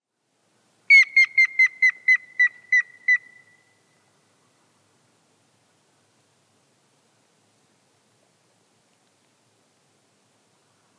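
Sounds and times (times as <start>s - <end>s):
Grey-headed woodpecker Picus canus giving clear whistled notes falling in pitch: 0.9s - 3.6s.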